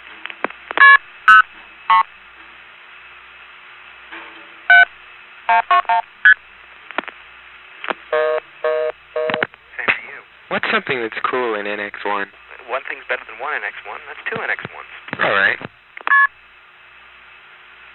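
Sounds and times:
faint steady hiss: 0:00.1 - 0:17.9
speech: 0:10.6 - 0:15.6
touch-tone telephone dialing of codes on a restricted line: 0:16.1 - 0:16.3.

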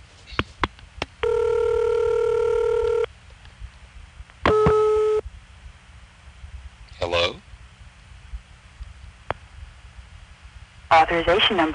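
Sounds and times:
automated telephone system beeping: 0:01.2 - 0:03.1, 0:04.5 - 0:05.2
speech: 0:11.0 - 0:11.7.

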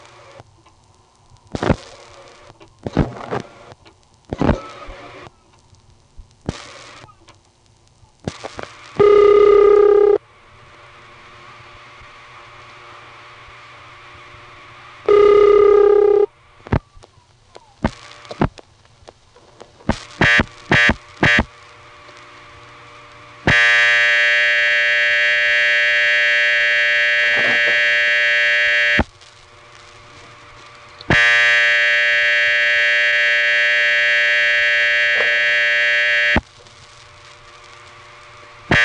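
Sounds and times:
faint hum: 0:00.0 - 0:38.8
telephone exchange power supply squawky buzzing: 0:00.0 - 0:38.8.

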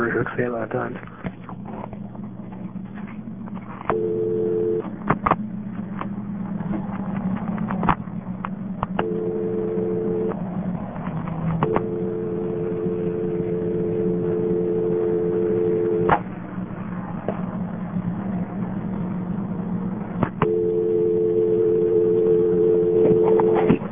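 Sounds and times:
low rumbling hum: 0:00.0 - 0:23.9
speech: 0:00.2 - 0:01.4
telephone dial tone from a payphone handset: 0:03.9 - 0:04.9, 0:09.0 - 0:10.4, 0:11.6 - 0:16.1, 0:20.4 - 0:23.9.

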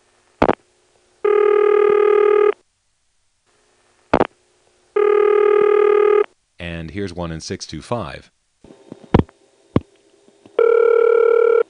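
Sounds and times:
telephone exchange ringback tone on a telephone line: 0:01.2 - 0:02.6, 0:05.0 - 0:06.2, 0:10.6 - 0:11.6
speech: 0:07.0 - 0:08.4.

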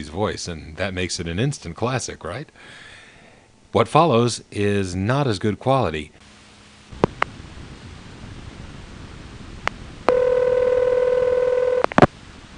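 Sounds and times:
speech: 0:00.0 - 0:02.9, 0:03.7 - 0:06.2
long steady buzzy telephone tone: 0:10.1 - 0:12.1.

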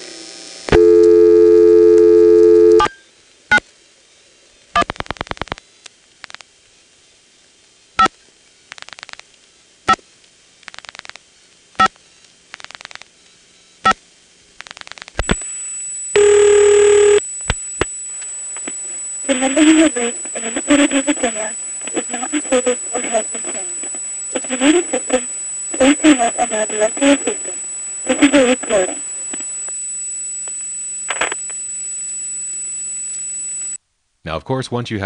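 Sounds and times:
steady opening telephone tone: 0:00.0 - 0:03.0, 0:14.8 - 0:33.8
high whine: 0:15.2 - 0:33.8
speech: 0:19.4 - 0:21.6, 0:34.5 - 0:35.0.

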